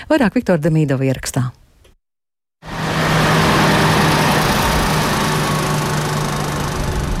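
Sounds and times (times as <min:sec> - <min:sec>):
speech: 0:00.1 - 0:01.6
30-tonne sand-loaded heavy trucks driving onto an overpass in Riga Latvia: 0:02.7 - 0:07.1.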